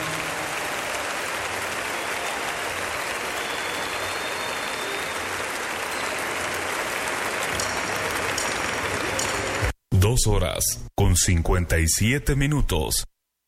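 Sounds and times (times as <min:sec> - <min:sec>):
large audience clapping: 0:00.0 - 0:09.8
speech: 0:10.2 - 0:13.1.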